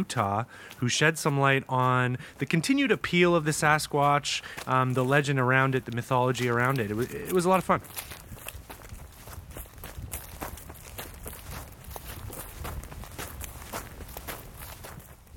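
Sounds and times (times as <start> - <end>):
speech: 0.0 - 8.2
footsteps walking up to a house: 0.0 - 15.3.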